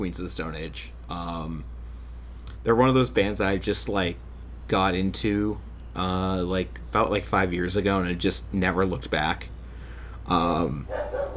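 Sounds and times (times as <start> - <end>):
speech: 0.0 - 1.7, 2.6 - 9.5, 10.3 - 11.3
dog barking: 10.8 - 11.3.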